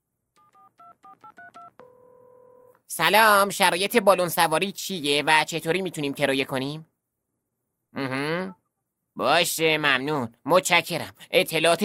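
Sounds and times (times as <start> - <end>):
telephone keypad dialing tones: 0.4 - 2.7
speech: 2.9 - 6.9, 7.9 - 8.2, 9.2 - 11.8.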